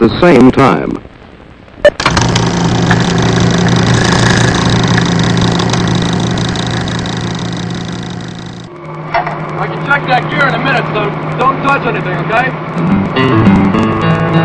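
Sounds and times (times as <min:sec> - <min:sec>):
speech: 0:00.0 - 0:01.1, 0:09.9 - 0:13.9
engine starting and settling into a rumbling idle: 0:02.0 - 0:08.7.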